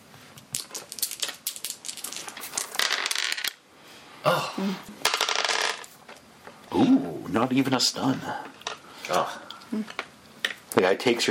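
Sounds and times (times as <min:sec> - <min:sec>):
dice rolling on a hard table surface in a tabletop game: 0:00.4 - 0:03.6, 0:05.0 - 0:06.2
speech: 0:04.3 - 0:05.1, 0:06.8 - 0:08.5, 0:09.1 - 0:10.0, 0:10.8 - 0:11.3.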